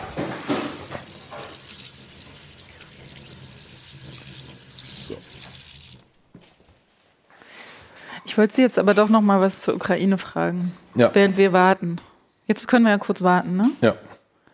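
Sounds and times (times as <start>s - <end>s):
water running from a kitchen tap while a wedding ring is rinsed: 0.5s - 6.2s
speech: 8.4s - 14.2s.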